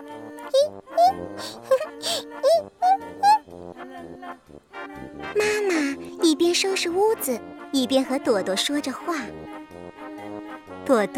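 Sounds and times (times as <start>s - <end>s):
steady soft tonal background: 0.0s - 11.1s
baby babbling: 0.6s - 3.4s
speech: 6.8s - 10.0s, 10.9s - 11.1s.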